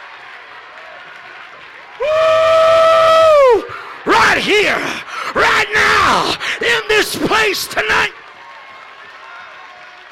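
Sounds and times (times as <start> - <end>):
audience clapping: 0.0 - 5.5, 6.2 - 10.1
loud sustained high-pitched shout: 2.0 - 8.2
speech: 4.4 - 8.2.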